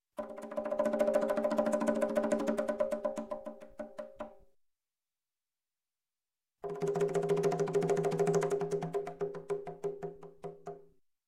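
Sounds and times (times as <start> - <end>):
conga roll: 0.2 - 4.4, 6.6 - 10.8.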